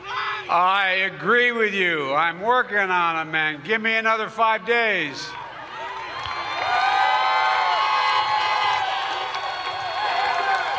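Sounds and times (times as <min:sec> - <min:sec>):
speech: 0:00.5 - 0:05.4
large angry crowd of protesters shouting and yelling: 0:05.3 - 0:10.7.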